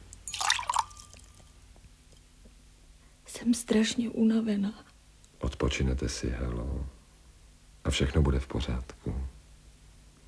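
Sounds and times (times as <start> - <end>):
water poured into a glass: 0.3 - 1.4
speech: 3.4 - 7.0, 7.9 - 9.4.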